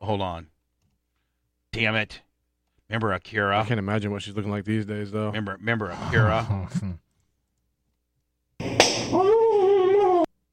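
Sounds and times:
speech: 0.1 - 0.5, 1.7 - 2.2, 2.9 - 7.0
sharp loud slap to the face: 8.6 - 9.2
person crying out: 9.2 - 10.3.

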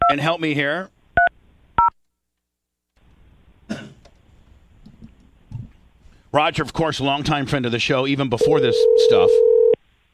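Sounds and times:
faint low noise: 0.0 - 10.1
speech: 0.1 - 1.0, 6.3 - 9.5
telephone dialing tones: 8.4 - 9.8.

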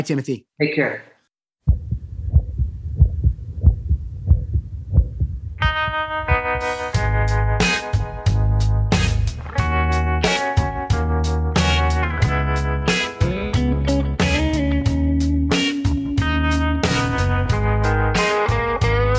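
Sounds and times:
speech: 0.0 - 1.1
human heartbeat: 1.6 - 7.1
bright sustained music with punchy drums: 5.6 - 19.1.

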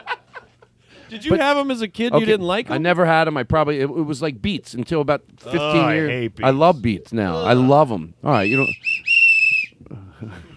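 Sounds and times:
speech: 1.1 - 8.9, 9.9 - 10.5
loud steady high whistle blast: 8.3 - 9.8.

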